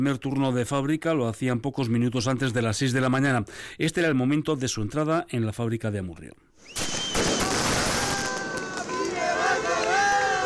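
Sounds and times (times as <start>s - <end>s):
speech: 0.0s - 6.9s
sharp crackling pops: 6.7s - 8.9s
lively outdoor crowd clapping: 7.3s - 10.4s.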